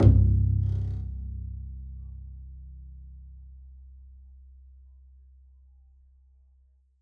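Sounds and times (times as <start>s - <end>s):
double bass pizzicato C1: 0.0s - 5.0s.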